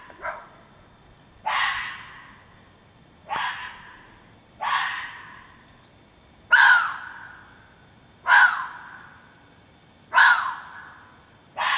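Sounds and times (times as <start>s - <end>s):
fox giving harsh hoarse barks: 0.0s - 0.6s, 1.4s - 2.3s, 3.2s - 4.0s, 4.6s - 5.5s, 6.5s - 7.4s, 8.2s - 8.9s, 10.1s - 11.0s, 11.6s - 11.7s.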